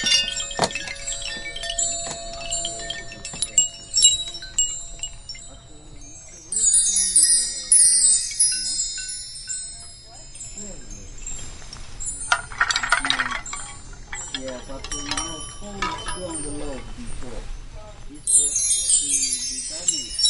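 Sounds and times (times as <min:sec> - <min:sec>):
faint speech-like voices: 0:00.0 - 0:20.2
wind chimes ringing in the wind: 0:00.0 - 0:20.2.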